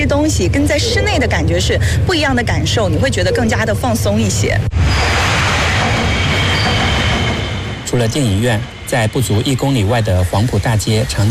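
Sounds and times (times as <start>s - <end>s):
metro train passing overhead on an elevated bridge approach in Wuhan: 0.0s - 11.2s
speech: 0.2s - 5.2s, 7.9s - 11.2s.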